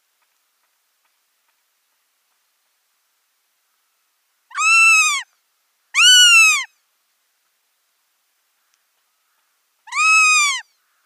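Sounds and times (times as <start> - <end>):
northern goshawk nestlings wailing calls: 4.5 - 5.3, 6.0 - 6.7, 9.9 - 10.7.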